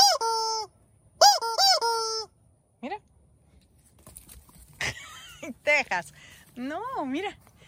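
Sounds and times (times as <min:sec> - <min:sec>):
squeaky rubber duck toy honking: 0:00.0 - 0:02.3
speech: 0:05.7 - 0:07.4.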